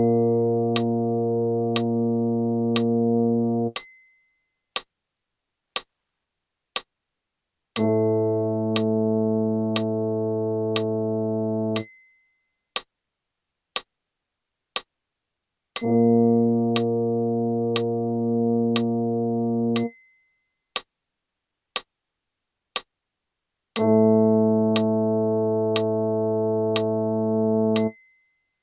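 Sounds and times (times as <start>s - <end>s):
brass in Bb: 0.2s - 3.8s, 7.8s - 11.8s, 15.8s - 19.9s, 23.8s - 27.9s.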